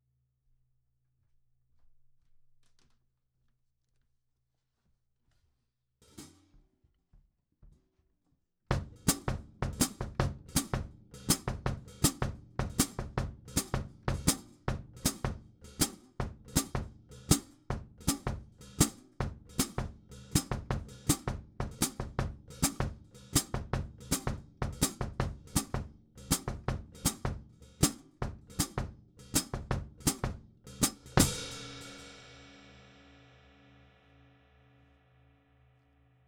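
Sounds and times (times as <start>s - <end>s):
hi-hat percussion bridge: 8.7s - 32.5s.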